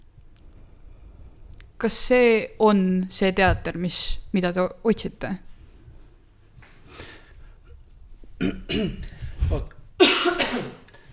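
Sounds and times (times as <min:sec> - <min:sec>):
speech: 0:01.8 - 0:05.5, 0:08.4 - 0:09.7
person coughing harshly: 0:08.4 - 0:09.1, 0:10.0 - 0:11.0
throat-clearing rasps: 0:08.4 - 0:09.2.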